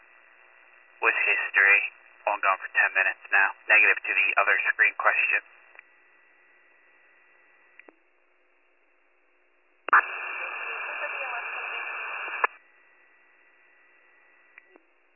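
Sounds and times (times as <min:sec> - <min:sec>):
two-way radio transmission static: 0:01.0 - 0:05.5, 0:09.9 - 0:12.6
speech: 0:01.0 - 0:05.6.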